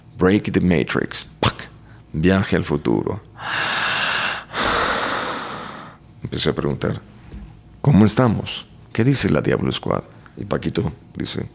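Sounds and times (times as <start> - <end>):
speech: 0.2 - 1.4, 2.1 - 3.6, 6.2 - 7.2, 7.9 - 11.5
person breathing deeply under hypnosis: 3.4 - 6.0.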